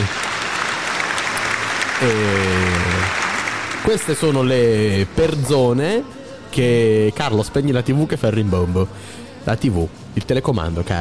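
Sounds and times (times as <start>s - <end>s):
dense audience applause: 0.0s - 5.1s
speech: 2.0s - 2.4s, 3.9s - 10.9s.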